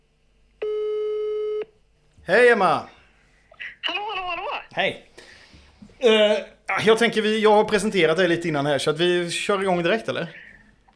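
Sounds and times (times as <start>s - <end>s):
telephone ringback tone: 0.6s - 1.6s
speech: 2.3s - 3.0s, 3.8s - 4.0s, 4.8s - 5.1s, 6.0s - 10.4s.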